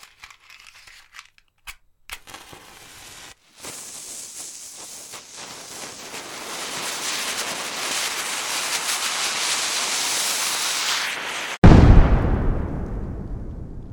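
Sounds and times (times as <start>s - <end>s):
steady bright hissing rush: 2.6s - 11.6s
single deep loud explosion booming and rumbling: 11.6s - 13.9s.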